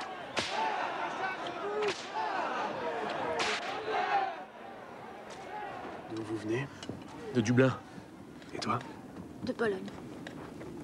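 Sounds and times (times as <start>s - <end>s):
whip lashes cracking: 0.0s - 0.7s, 3.4s - 3.7s
crowd of voices murmuring and crying out: 0.0s - 9.2s
speech: 6.4s - 7.9s, 8.6s - 10.0s.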